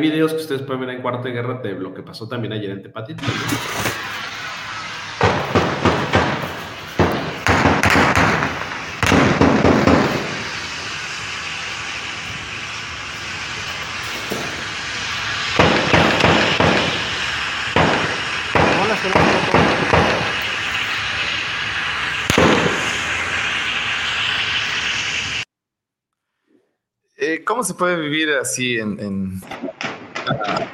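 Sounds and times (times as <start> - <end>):
speech: 0.0 - 4.2, 27.7 - 30.7
steady roar: 3.2 - 25.5
heavy-caliber gunfire bursts: 5.0 - 21.2, 22.2 - 23.4.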